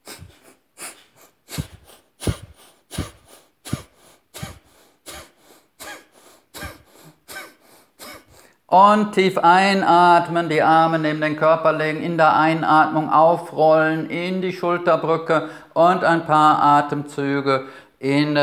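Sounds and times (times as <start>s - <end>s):
sharp forceful breath-of-fire exhalations through the nose: 0.0s - 8.7s
speech: 8.7s - 18.4s.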